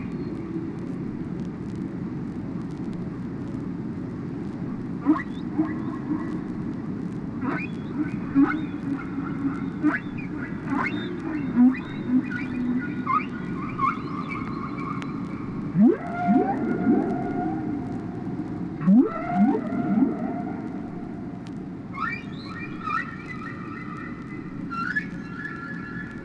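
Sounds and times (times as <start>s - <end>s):
background hiss: 0.0s - 26.2s
whale calls: 5.0s - 6.6s, 7.4s - 26.2s.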